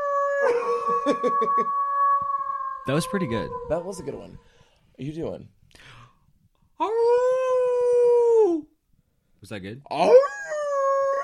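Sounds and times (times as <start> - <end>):
person imitating a howling dog: 0.0 - 4.5, 6.8 - 8.7, 10.0 - 11.2
speech: 0.4 - 1.8, 2.8 - 6.0, 9.4 - 10.3.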